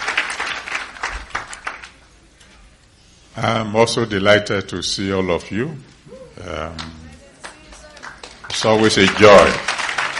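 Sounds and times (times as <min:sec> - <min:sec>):
crowd clapping and applauding: 0:00.0 - 0:02.0, 0:06.8 - 0:10.1
speech: 0:03.4 - 0:07.0, 0:08.6 - 0:09.7.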